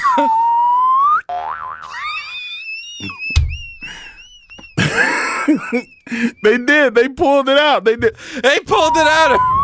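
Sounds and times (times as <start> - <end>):
whistling sliding cartoon effects: 0.0 - 1.3, 2.0 - 4.8, 8.7 - 9.6
springy wobbling cartoon boing: 1.2 - 2.2
speech: 5.7 - 9.6.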